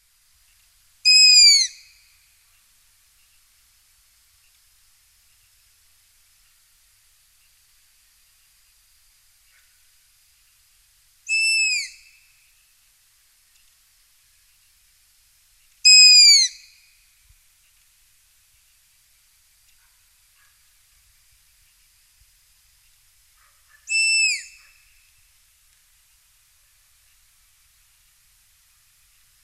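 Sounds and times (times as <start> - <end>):
Striped Owl Asio clamator calling: 1.0 - 2.0, 11.3 - 12.2, 15.8 - 16.9, 23.4 - 25.1.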